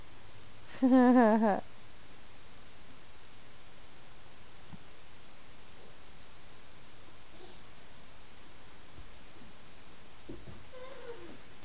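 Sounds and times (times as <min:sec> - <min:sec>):
speech: 0:00.8 - 0:01.7
cat meowing: 0:10.7 - 0:11.4.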